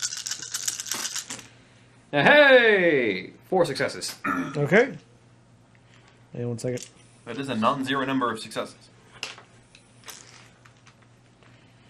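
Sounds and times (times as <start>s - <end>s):
dice rolled for a hacking check in a game clattering on a tabletop: 0.0s - 1.5s, 10.0s - 11.0s
speech: 2.1s - 5.1s, 6.4s - 8.9s.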